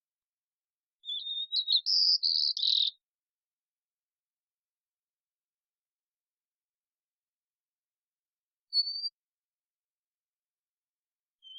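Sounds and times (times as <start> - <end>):
immature white-crowned sparrow song in the Pacific Northwest: 0.0 - 3.8, 8.2 - 9.4, 11.2 - 11.5.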